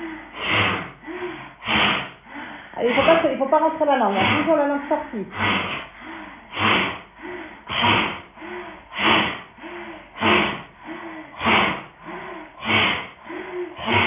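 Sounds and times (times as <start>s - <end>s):
forceful rhythmic breathing during a yoga breathing exercise with tongue stuck out: 0.0s - 14.0s
speech: 2.8s - 5.9s.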